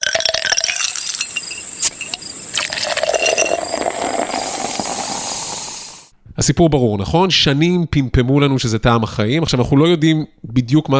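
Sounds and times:
ice cubes clinking in a full glass: 0:00.0 - 0:05.4
steady fizzing hiss: 0:00.6 - 0:06.1
speech: 0:06.4 - 0:10.9.

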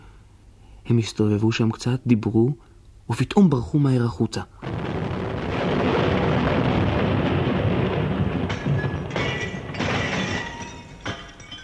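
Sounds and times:
speech: 0:00.9 - 0:04.9
explosion with deep roaring rumble: 0:04.6 - 0:11.1
falling debris crashing: 0:04.6 - 0:11.6.

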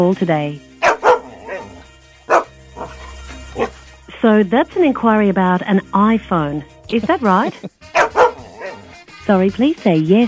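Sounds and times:
speech: 0:00.0 - 0:00.7, 0:04.2 - 0:07.8, 0:09.3 - 0:10.2
dog barking: 0:00.8 - 0:03.8, 0:08.0 - 0:08.9.

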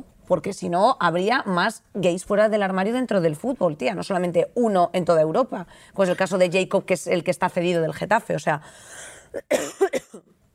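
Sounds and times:
speech: 0:00.3 - 0:10.3
breathy hiss: 0:08.6 - 0:09.4
person coughing dryly: 0:09.2 - 0:10.3.

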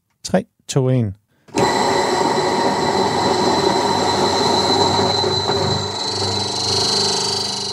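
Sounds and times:
speech: 0:00.3 - 0:01.7
electric spice grinder grinding whole spices: 0:01.6 - 0:07.7.

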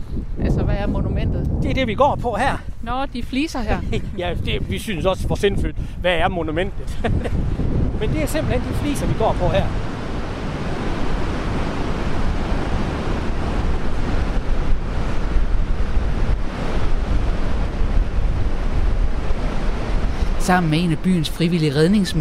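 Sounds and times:
gusts of wind buffeting the microphone: 0:00.0 - 0:21.3
speech: 0:00.3 - 0:09.9, 0:20.5 - 0:22.1
laughter: 0:03.7 - 0:04.3, 0:06.8 - 0:07.5
ocean waves breaking on a beach: 0:06.7 - 0:22.1.

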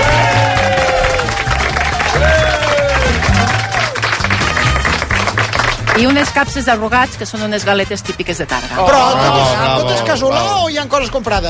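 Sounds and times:
crowd cheering: 0:00.0 - 0:06.6, 0:08.8 - 0:10.5
crowd clapping: 0:00.0 - 0:06.9
rhythmic musical backing: 0:00.0 - 0:11.4
speech: 0:06.0 - 0:11.4.

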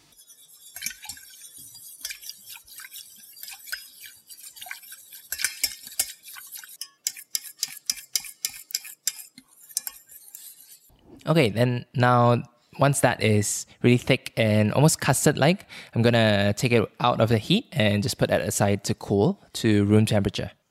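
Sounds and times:
whisk stirring flour mixture in a saucepan over low heat: 0:00.0 - 0:10.9
speech: 0:11.3 - 0:20.6.

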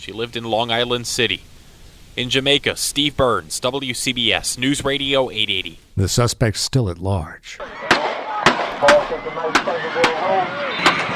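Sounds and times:
speech: 0:00.0 - 0:01.5, 0:02.2 - 0:07.8, 0:08.8 - 0:11.0
agitated crowd voices and shouting: 0:07.6 - 0:11.1
gunshots at a football game: 0:07.6 - 0:11.1.

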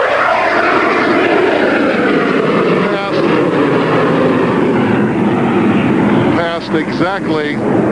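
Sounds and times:
two airplanes roaring past at an air show, one with landing gear down: 0:00.0 - 0:07.9
voices: 0:02.7 - 0:03.4, 0:06.2 - 0:07.6.

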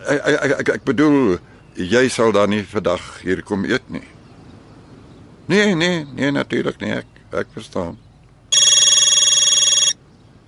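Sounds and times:
speech: 0:00.0 - 0:04.2, 0:05.5 - 0:08.0
cellphone ringing with a bright electronic trill: 0:08.5 - 0:10.0.

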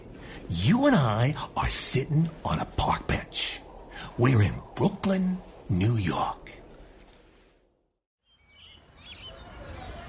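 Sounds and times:
speech: 0:00.5 - 0:03.6, 0:04.2 - 0:06.6
birds chirping and singing in a park: 0:08.2 - 0:10.0.

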